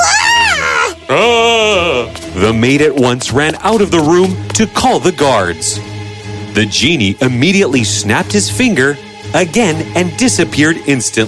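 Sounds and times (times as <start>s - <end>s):
woman screaming out loud: 0.0s - 1.6s
speech: 1.1s - 1.4s, 2.4s - 6.0s, 6.6s - 11.2s.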